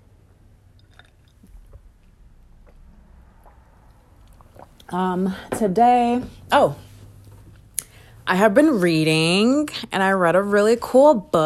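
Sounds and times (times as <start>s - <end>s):
quiet gulps and swallows of water: 0.7s - 5.0s
soft wet mouth sounds of drinking water: 0.7s - 5.0s
speech: 4.9s - 6.8s, 8.3s - 11.4s.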